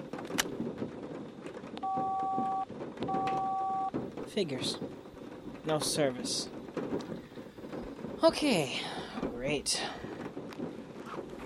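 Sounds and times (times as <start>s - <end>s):
rumbling noisy background: 0.0s - 11.4s
cell phone keypad dialing tones: 1.8s - 3.9s
speech: 4.3s - 5.0s, 5.6s - 7.1s, 8.2s - 10.1s.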